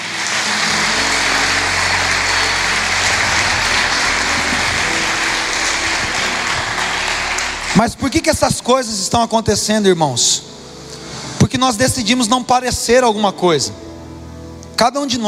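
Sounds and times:
audience applauding: 0.0s - 8.8s
low sustained hum: 0.0s - 9.0s
speech: 7.8s - 10.5s, 11.6s - 13.9s, 14.8s - 15.2s.

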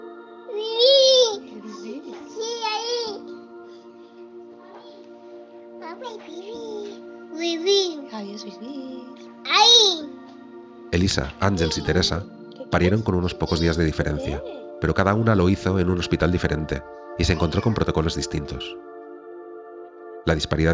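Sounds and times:
baby girl babbling and cooing: 0.5s - 3.4s, 5.8s - 8.2s, 9.4s - 10.2s, 11.4s - 14.8s
speech: 8.4s - 9.6s, 11.0s - 18.9s, 20.2s - 20.7s.

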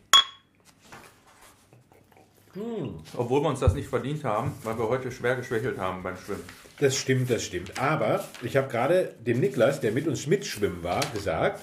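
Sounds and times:
beer bottles clinking together in a toast: 0.0s - 0.5s
faint rustling and soft handling noises: 0.6s - 2.4s, 3.2s - 11.6s
speech: 2.6s - 11.6s.

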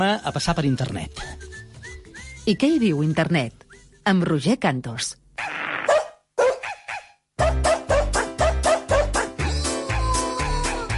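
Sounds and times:
speech: 0.0s - 1.5s, 2.4s - 5.2s
several dogs barking: 5.9s - 10.9s.

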